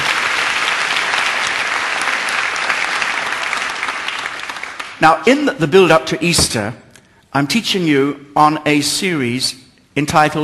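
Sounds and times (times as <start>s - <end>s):
large audience applauding: 0.0s - 5.0s
speech: 5.0s - 6.8s, 7.4s - 10.4s.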